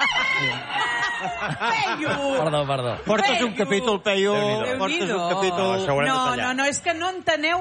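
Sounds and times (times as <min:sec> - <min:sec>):
live rooster crowing while held in someone's hands during a parade: 0:00.0 - 0:01.5
laughter: 0:00.0 - 0:04.0
parade crowd noise: 0:00.0 - 0:07.5
speech: 0:00.4 - 0:07.5.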